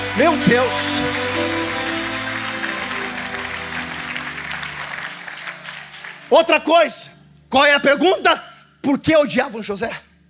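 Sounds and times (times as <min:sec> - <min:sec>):
speech: 0:00.2 - 0:01.8, 0:06.3 - 0:10.1
crowd clapping: 0:00.2 - 0:06.7.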